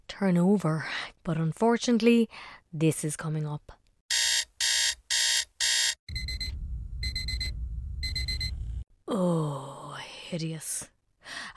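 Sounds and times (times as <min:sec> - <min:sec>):
speech: 0:00.2 - 0:03.8, 0:09.1 - 0:09.7, 0:10.3 - 0:10.9
alarm clock ringing in electronic beeps: 0:04.1 - 0:08.6
low rumbling background: 0:06.1 - 0:08.8.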